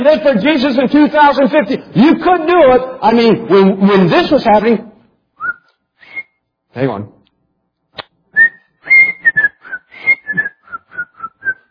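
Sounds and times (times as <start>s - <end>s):
speech: 0.0s - 4.9s, 6.8s - 7.2s
person whistling a short bouncy tune: 5.4s - 6.4s, 8.4s - 11.6s.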